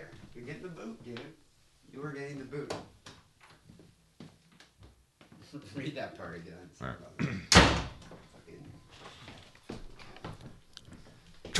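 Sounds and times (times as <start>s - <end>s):
speech: 0.4s - 3.0s, 5.5s - 7.8s
door slamming shut: 7.5s - 8.0s.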